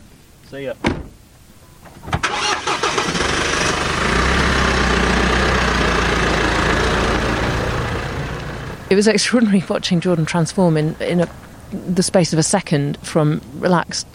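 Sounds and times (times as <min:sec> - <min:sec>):
speech: 0:00.5 - 0:01.1, 0:08.9 - 0:14.1
car engine cranking and starting: 0:01.9 - 0:12.0.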